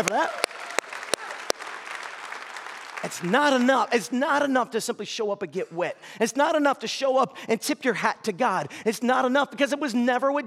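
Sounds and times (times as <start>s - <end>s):
speech: 0.0s - 0.5s, 3.0s - 10.4s
congregation applause in a church: 0.0s - 4.5s.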